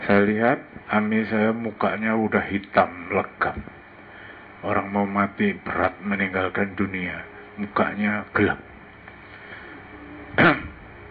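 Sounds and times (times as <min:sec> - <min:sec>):
quiet hum: 0:00.0 - 0:11.0
speech: 0:00.1 - 0:03.8, 0:04.6 - 0:08.7
throat clearing: 0:10.4 - 0:10.9.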